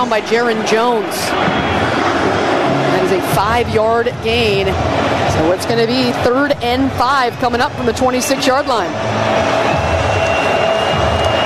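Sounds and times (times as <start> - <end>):
speech: 0.0 - 2.4, 3.0 - 9.7
large stadium crowd roaring: 0.0 - 11.4.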